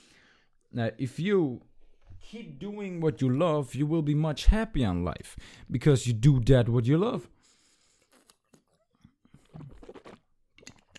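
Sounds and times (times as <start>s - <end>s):
speech: 0.7s - 7.4s
soft gulp: 7.9s - 10.9s
quick sip of water: 9.3s - 10.9s.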